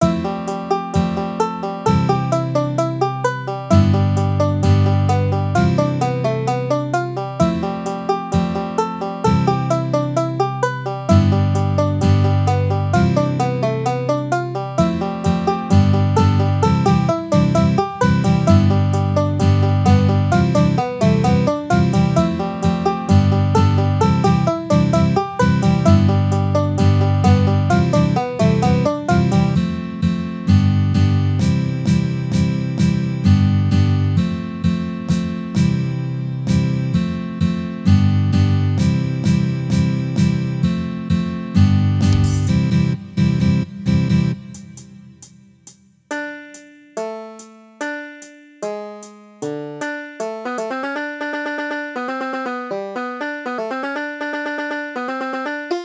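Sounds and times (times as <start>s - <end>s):
banjo: 0.0s - 44.4s, 47.0s - 55.8s.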